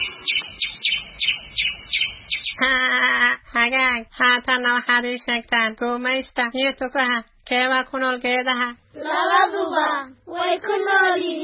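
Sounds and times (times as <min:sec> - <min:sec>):
tree-dwelling squirrel chirping: 0:00.0 - 0:02.7
speech: 0:03.7 - 0:11.4.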